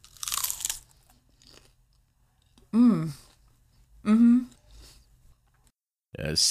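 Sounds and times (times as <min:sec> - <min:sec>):
crunchy bite of fried bite-sized morsel: 0:00.0 - 0:01.8
speech: 0:06.3 - 0:06.5.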